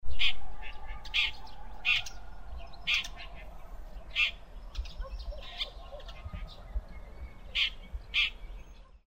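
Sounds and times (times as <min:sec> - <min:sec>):
red-backed shrike calling: 0:00.1 - 0:06.8.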